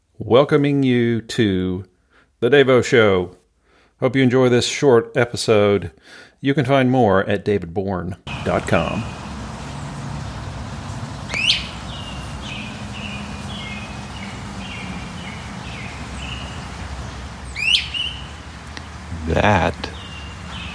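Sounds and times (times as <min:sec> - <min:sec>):
speech: 0:00.2 - 0:03.4, 0:04.0 - 0:09.2, 0:19.3 - 0:19.9
bird chirps: 0:08.3 - 0:20.7
steady low outdoor rumble: 0:08.3 - 0:20.7
great crested flycatcher rising whistled calls: 0:11.2 - 0:18.9, 0:19.8 - 0:20.7.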